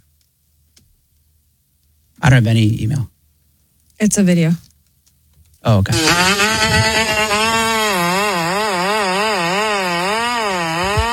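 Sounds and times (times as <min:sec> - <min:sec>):
speech: 0:02.2 - 0:03.1, 0:04.0 - 0:04.7, 0:05.6 - 0:07.7
remote-control lawnmower engine cutting brush: 0:05.9 - 0:11.1.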